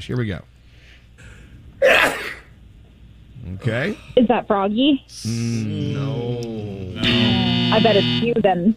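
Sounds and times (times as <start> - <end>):
speech: 0.0 - 0.6, 3.4 - 8.7
person sneezing: 1.8 - 2.5.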